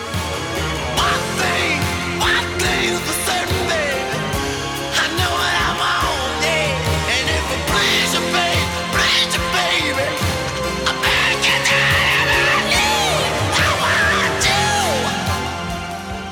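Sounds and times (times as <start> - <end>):
soul ballad with high emotive vocal and layered backing instruments: 0.0 - 16.3.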